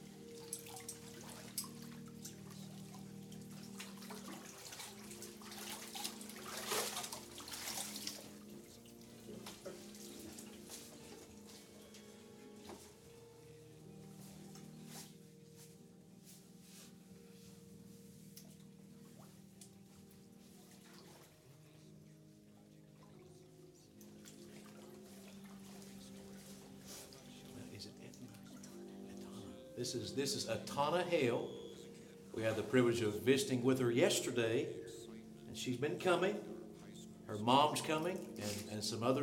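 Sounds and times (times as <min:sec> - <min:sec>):
heavier water splashing: 0:00.0 - 0:11.8, 0:23.0 - 0:28.8
water dripping and trickling after baptism immersion: 0:00.0 - 0:12.0, 0:18.4 - 0:21.4, 0:22.7 - 0:29.4
speech: 0:29.8 - 0:31.5, 0:32.4 - 0:34.9, 0:35.6 - 0:36.4, 0:37.3 - 0:39.2.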